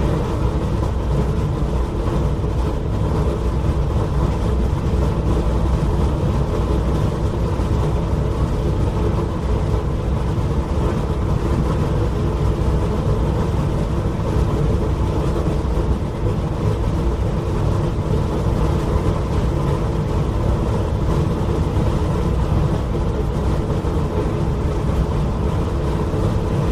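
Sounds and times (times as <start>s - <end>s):
dense rumble inside a train cabin: 0.0s - 26.7s.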